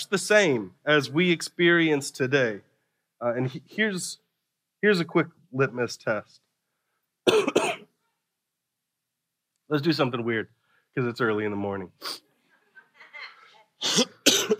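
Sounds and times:
speech: 0.0s - 4.2s, 4.8s - 6.4s, 9.7s - 12.3s, 13.8s - 14.5s
man speaking calmly: 0.0s - 6.5s, 9.7s - 12.3s
person coughing: 7.3s - 7.9s, 13.8s - 14.5s.

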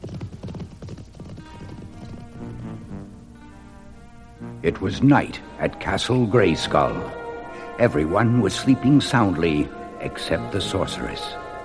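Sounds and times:
hooves of three horses ridden away from a burning city clip-clopping: 0.0s - 2.7s
speech: 4.6s - 7.2s, 7.8s - 11.4s.

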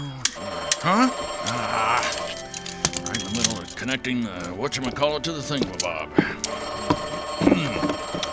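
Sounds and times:
telephone ringing: 0.0s - 8.3s
speech: 0.8s - 1.2s, 3.9s - 6.7s
clattering knocks: 2.0s - 8.3s.

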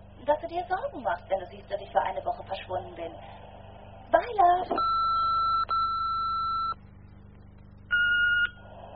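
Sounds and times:
speech: 0.2s - 3.5s, 4.1s - 5.0s
electronic phone keypad beeps while dialing a call: 4.8s - 6.8s, 7.9s - 8.6s.

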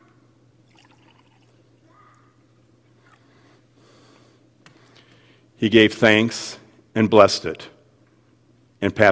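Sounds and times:
liquid poured into a communion cup during a church communion rite: 0.6s - 1.7s
speech: 5.6s - 7.8s, 8.8s - 9.1s.

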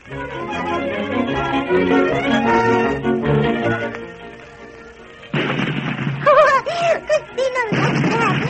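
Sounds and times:
orchestral music: 0.0s - 8.4s
speech: 1.7s - 2.8s
cannons firing: 5.2s - 8.4s.

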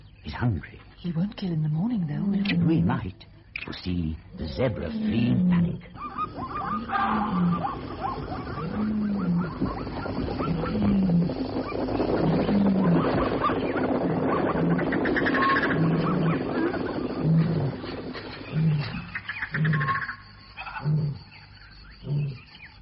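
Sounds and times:
noisy outdoor background: 0.0s - 22.8s
speech: 0.3s - 10.3s
vervet monkey alarm barks: 6.0s - 10.7s.

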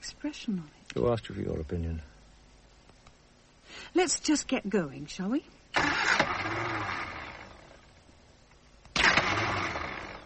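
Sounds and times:
speech: 0.2s - 2.1s, 3.8s - 7.0s
car starter motor cranking while the engine fails to start: 5.8s - 7.8s, 8.9s - 10.2s.

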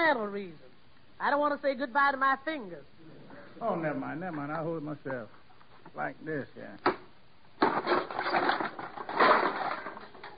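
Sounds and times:
speech: 0.0s - 5.4s, 6.0s - 7.0s
hammer smashing a wooden birdhouse: 7.6s - 10.0s
wooden birdhouse cracking, splintering and rattling: 7.6s - 10.3s.

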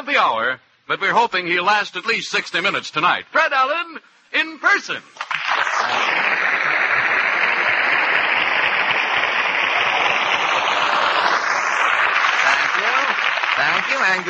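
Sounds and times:
speech: 0.1s - 6.7s, 13.6s - 14.2s
studio audience applause: 5.2s - 14.2s.

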